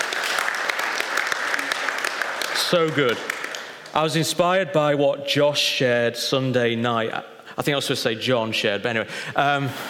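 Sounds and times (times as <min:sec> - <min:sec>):
crowd applauding: 0:00.0 - 0:04.0
speech: 0:02.7 - 0:03.3, 0:03.9 - 0:09.8.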